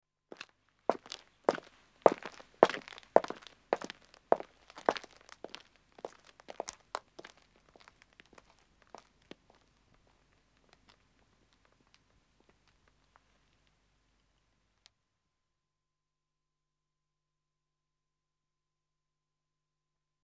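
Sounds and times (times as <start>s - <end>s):
footsteps of two men walking on a country road: 0.3s - 12.8s.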